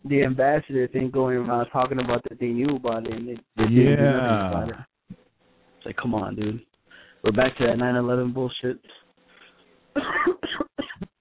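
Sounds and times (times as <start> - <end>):
speech: 0.1 - 4.9, 5.8 - 9.0
smoker coughing harshly: 10.0 - 11.1.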